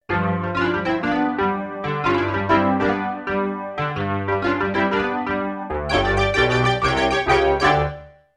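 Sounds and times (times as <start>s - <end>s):
fuzzy Wurli electric piano: 0.1s - 8.0s.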